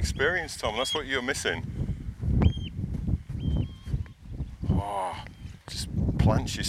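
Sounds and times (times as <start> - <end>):
lapwing calling on the moors: 0.0 - 1.2, 2.4 - 2.8, 3.4 - 5.6
wind rumbling across open ground: 0.0 - 6.6
speech: 0.1 - 1.9, 4.8 - 6.6.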